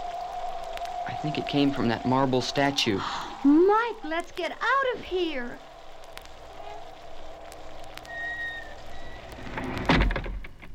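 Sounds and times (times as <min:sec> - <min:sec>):
steady hiss: 0:00.0 - 0:10.7
speech: 0:01.1 - 0:05.7
door creaking: 0:08.0 - 0:10.7.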